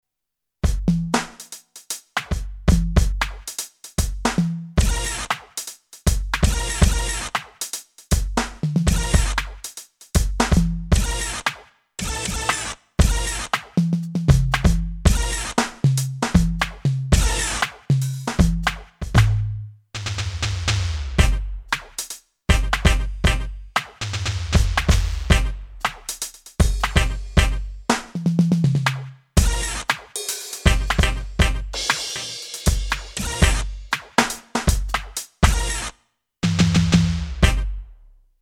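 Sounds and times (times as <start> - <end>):
electronic drum kit FX kit sounds: 0.6 - 37.9.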